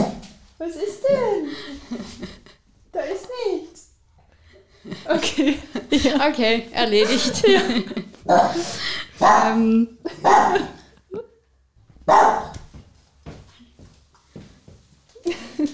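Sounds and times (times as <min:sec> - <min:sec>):
speech: 0:00.6 - 0:02.4, 0:05.1 - 0:10.8
laughter: 0:04.9 - 0:06.3, 0:06.9 - 0:08.7, 0:10.0 - 0:11.3
dog barking: 0:09.2 - 0:09.6, 0:10.2 - 0:10.8, 0:12.1 - 0:12.6.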